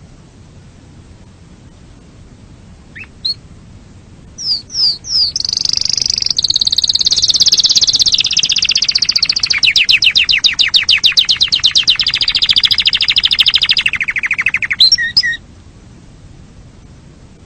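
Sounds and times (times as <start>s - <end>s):
canary training song of swooping whistles and a loud continuous high trill: 2.9s - 3.4s, 4.3s - 15.4s.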